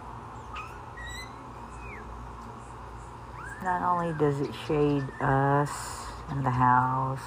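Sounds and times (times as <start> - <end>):
bird chirps and whistles from a tree in a backyard: 0.5 - 2.1
speech: 3.6 - 7.2.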